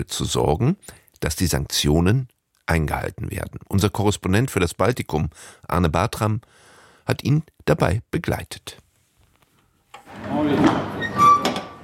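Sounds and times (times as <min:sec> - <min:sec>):
speech: 0:00.0 - 0:08.8, 0:10.1 - 0:11.0
heavy metal truck cargo hold door being opened: 0:10.0 - 0:11.8.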